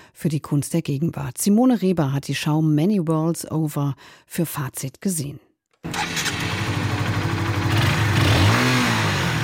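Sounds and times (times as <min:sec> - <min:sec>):
speech: 0:00.2 - 0:06.1
motorcycle engine starting and revving: 0:05.8 - 0:09.4.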